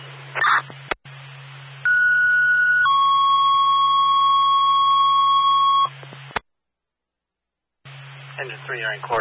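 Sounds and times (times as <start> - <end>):
low hum: 0.0 - 6.4, 7.8 - 9.1
fire station electronic alarm tone: 1.9 - 5.9
speech: 8.4 - 9.1.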